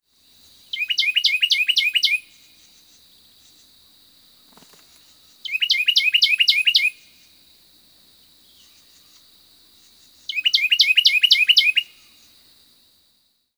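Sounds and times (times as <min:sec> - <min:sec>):
Carolina wren singing in Florida: 0:00.4 - 0:03.7, 0:04.6 - 0:07.1, 0:08.4 - 0:12.4.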